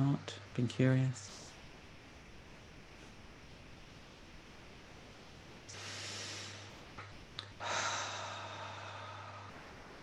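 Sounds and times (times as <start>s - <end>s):
low steady hum: 0.0s - 10.0s
speech: 0.1s - 1.3s
faint sniff: 5.7s - 6.7s
long forceful breaths out: 5.7s - 6.8s, 7.6s - 9.6s.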